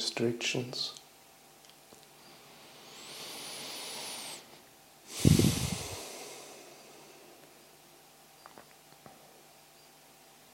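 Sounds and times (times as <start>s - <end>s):
deep breathing: 2.2s - 7.7s.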